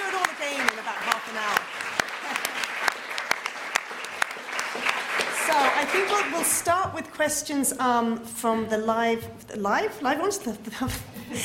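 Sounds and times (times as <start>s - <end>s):
audience applause: 0.0s - 6.8s
speech: 5.8s - 11.4s.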